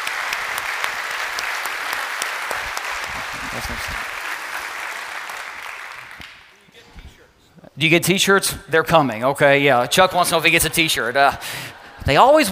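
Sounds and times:
audience applause: 0.0s - 6.5s
speech: 3.6s - 4.2s, 7.8s - 12.5s.

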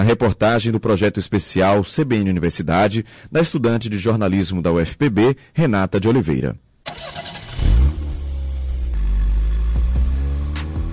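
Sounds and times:
speech: 0.0s - 7.3s
car engine starting and revving: 6.9s - 10.9s.

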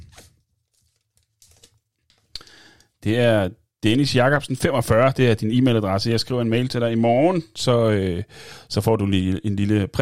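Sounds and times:
folded paper note rustling as it is unwrapped: 0.0s - 2.3s
speech: 3.0s - 9.9s.

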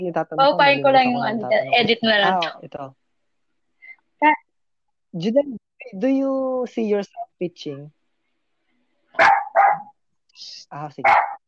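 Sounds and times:
speech: 0.0s - 3.0s, 4.2s - 4.4s, 5.1s - 8.0s, 10.4s - 11.4s
dog barking: 9.2s - 9.9s, 11.0s - 11.4s.

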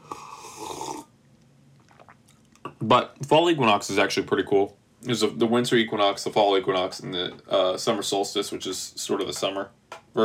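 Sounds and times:
person slurping a hot drink: 0.0s - 1.1s, 1.8s - 2.4s
speech: 2.8s - 10.2s.

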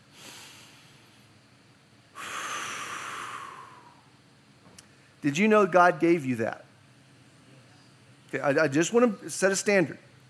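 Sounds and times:
deep breath: 0.0s - 1.4s, 2.1s - 4.1s
speech: 5.2s - 6.6s, 8.3s - 10.1s.

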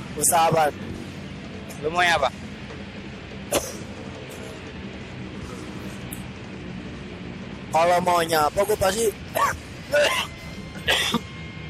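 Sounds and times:
speech: 0.2s - 1.0s, 1.8s - 2.4s, 7.7s - 10.3s, 10.9s - 11.2s
person coughing after choking on chicken liver: 3.5s - 3.9s, 9.4s - 11.2s.

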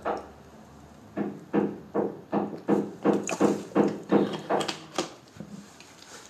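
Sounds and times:
neighbour hammering doing DIY: 1.2s - 4.8s.

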